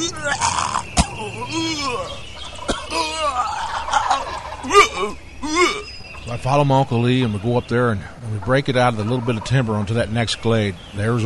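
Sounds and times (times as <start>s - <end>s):
person mimicking a turkey gobble during turkey hunting: 0.0s - 5.9s
speech: 5.0s - 5.2s, 6.4s - 11.2s.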